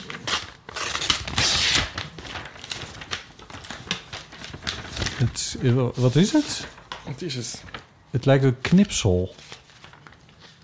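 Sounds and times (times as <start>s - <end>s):
paper envelope being ripped open: 0.0s - 5.2s
speech: 5.2s - 9.5s.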